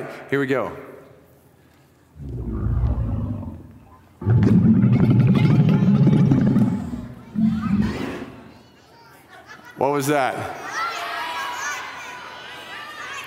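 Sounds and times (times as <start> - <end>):
speech: 0.0 - 0.9, 9.8 - 10.7
camel spitting and grumbling: 2.2 - 8.4.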